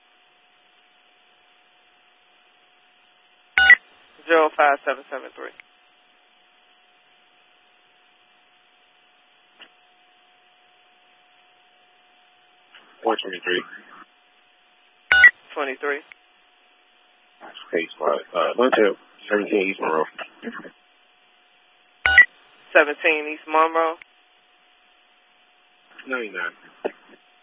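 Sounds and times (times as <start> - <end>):
telephone touch-tone dialing beeps: 3.6 - 3.8, 15.1 - 15.3, 22.1 - 22.3
speech: 4.2 - 5.7, 13.2 - 13.9, 15.6 - 16.2, 17.5 - 20.8, 22.8 - 24.1, 26.0 - 26.7.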